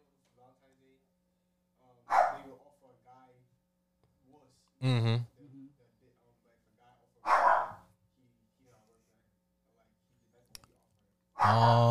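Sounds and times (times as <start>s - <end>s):
dog barking at home: 2.1s - 2.5s, 7.2s - 7.9s, 11.4s - 11.8s
speech: 4.3s - 5.3s, 11.4s - 11.8s.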